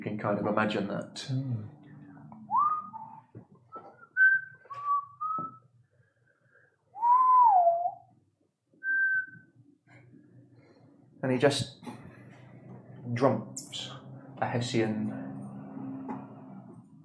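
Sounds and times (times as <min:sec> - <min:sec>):
speech: 0:00.2 - 0:01.8, 0:11.2 - 0:11.8, 0:13.1 - 0:15.2
person whistling tunelessly across a lake: 0:02.5 - 0:05.7, 0:07.0 - 0:08.1, 0:08.8 - 0:09.6.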